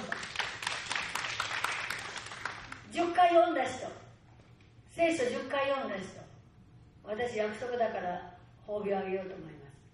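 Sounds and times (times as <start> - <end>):
crowd applauding: 0.0 - 2.8
speech: 3.0 - 4.0, 5.0 - 6.3, 7.1 - 9.6.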